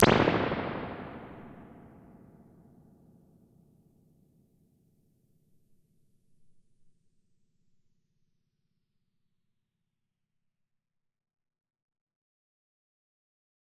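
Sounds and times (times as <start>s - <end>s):
mixed springs impulse responses: 0.0s - 2.0s.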